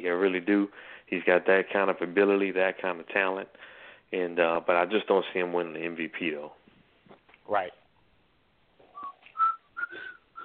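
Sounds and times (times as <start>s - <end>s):
speech: 0.0s - 6.6s, 7.5s - 7.8s
person whistling a short tune: 8.9s - 10.4s.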